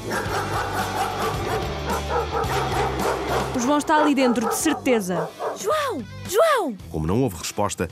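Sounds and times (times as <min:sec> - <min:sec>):
dog barking furiously with higher yips: 0:00.0 - 0:06.0
speech: 0:03.6 - 0:07.9.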